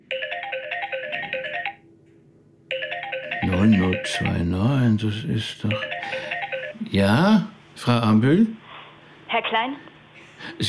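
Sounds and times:
electronic telephone ringtone in an office: 0.0 - 1.8, 2.7 - 4.5, 5.7 - 6.9
speech: 3.5 - 8.6, 9.3 - 10.6.

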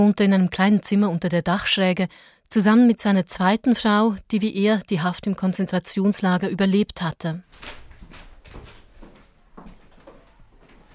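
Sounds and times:
speech: 0.0 - 8.2
attic door of a house being opened: 7.5 - 10.9.

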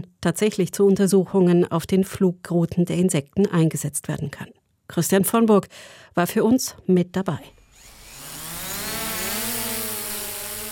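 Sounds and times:
speech: 0.2 - 7.6
drone high motor whine lifting off over a meadow: 7.6 - 10.7.

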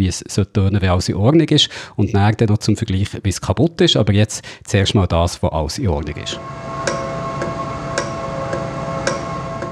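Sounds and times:
speech: 0.0 - 6.7
constant engine-like hum: 6.3 - 9.7
properly working valve ticking: 6.3 - 9.7.

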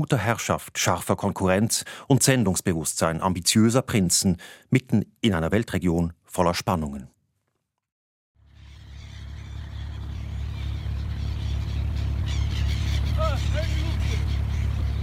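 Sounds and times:
speech: 0.0 - 7.2
wooden ferry boat engine chugging crossing Dubai Creek: 8.4 - 15.0
gulls crying circling the ferries: 8.5 - 15.0.

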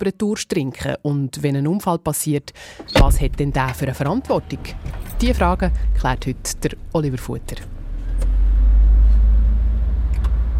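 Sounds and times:
speech: 0.0 - 7.8
car engine rumbling: 2.7 - 10.5.

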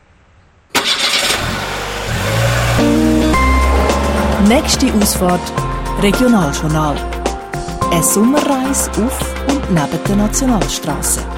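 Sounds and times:
broadcast van engine starting and pulling away: 0.7 - 7.8
speech: 4.4 - 7.1, 7.9 - 11.3.

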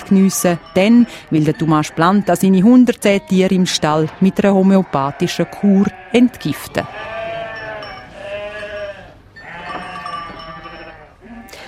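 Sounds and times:
speech: 0.1 - 7.2
several sheep bleating: 3.0 - 11.6.

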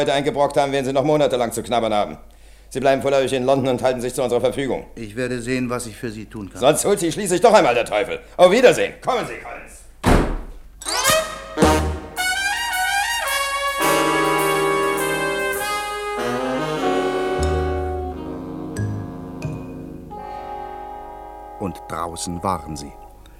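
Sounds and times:
speech: 0.0 - 9.6, 21.9 - 23.0
doors slamming shut: 10.0 - 11.9
dramatic orchestral music: 10.9 - 23.1.

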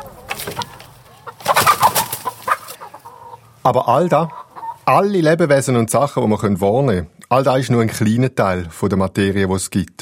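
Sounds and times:
chicken clucking: 0.0 - 5.2
speech: 3.6 - 9.9.

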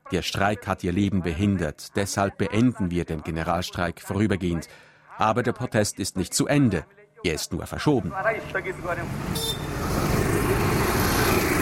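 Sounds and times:
speech: 0.1 - 11.5
dense street traffic with car and motorbike engines: 8.1 - 11.6
brief horn-like toot: 9.1 - 9.9.

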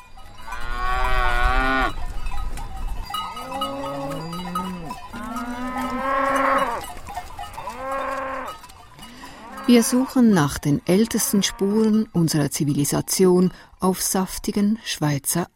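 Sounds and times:
cows mooing on a Swiss alpine pasture: 0.4 - 2.0, 3.2 - 12.0
speech: 9.7 - 15.5.

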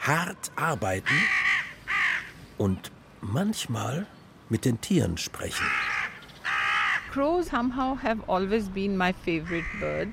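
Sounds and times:
speech: 0.0 - 1.5, 2.6 - 5.9, 7.1 - 10.1
crows cawing: 0.8 - 2.5, 5.4 - 7.2, 9.4 - 10.1.

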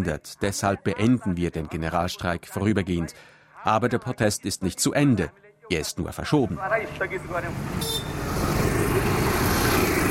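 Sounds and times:
speech: 0.0 - 9.1
dense street traffic of cars rumbling in Kathmandu Nepal: 6.5 - 10.0
motorbikes in street traffic in Kathmandu Nepal: 6.5 - 10.0
brief horn-like toot: 7.7 - 8.3.

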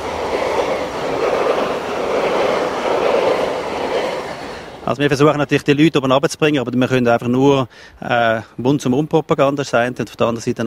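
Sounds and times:
train wheels on rails rumbling past: 0.0 - 7.5
speech: 4.9 - 10.6.

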